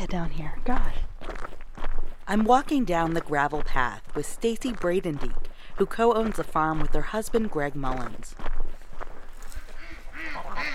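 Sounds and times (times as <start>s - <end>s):
speech: 0.0s - 1.1s, 2.3s - 8.6s
ducks quacking on a farm pond: 9.6s - 10.7s.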